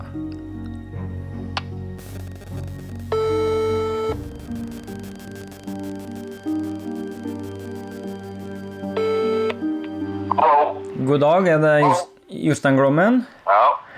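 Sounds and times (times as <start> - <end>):
faint steady hum: 2.0 - 9.6
telephone ringback tone heard through the phone line: 3.1 - 4.4, 7.6 - 9.7
speech: 11.1 - 13.6.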